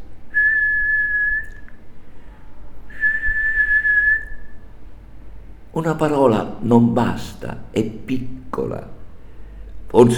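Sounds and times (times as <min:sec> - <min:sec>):
faint low hum: 0:00.0 - 0:10.1
person whistling a tune: 0:00.3 - 0:01.8, 0:02.9 - 0:04.6
speech: 0:05.8 - 0:09.0, 0:09.9 - 0:10.1.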